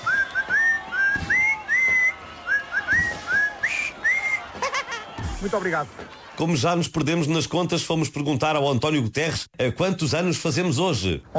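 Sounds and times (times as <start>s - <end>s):
person whistling a birthday tune: 0.0s - 4.5s
laughter: 2.5s - 6.4s
speech: 5.4s - 11.3s.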